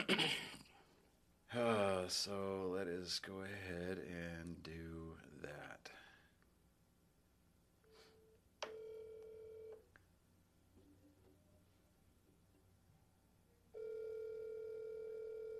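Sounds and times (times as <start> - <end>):
speech: 1.5 - 6.0
outgoing phone call electronic ring tones: 8.7 - 9.8, 13.8 - 15.5.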